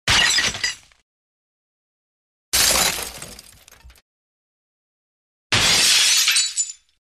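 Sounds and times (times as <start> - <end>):
light metallic glass shatter: 0.1 - 1.0, 2.6 - 4.0, 5.5 - 7.0.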